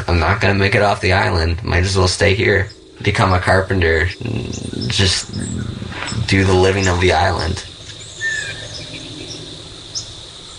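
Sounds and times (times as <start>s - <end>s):
speech: 0.1s - 5.7s, 6.3s - 7.7s
northern waterthrush chip calls: 2.2s - 10.5s.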